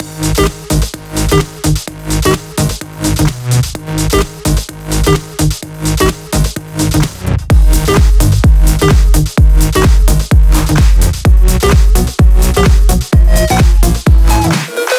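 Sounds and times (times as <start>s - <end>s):
funk dance music mix: 0.0s - 14.9s.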